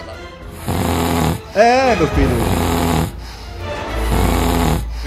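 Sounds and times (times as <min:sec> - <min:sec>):
person imitating loud snoring: 0:00.6 - 0:03.3, 0:04.1 - 0:04.9
speech: 0:01.6 - 0:02.6.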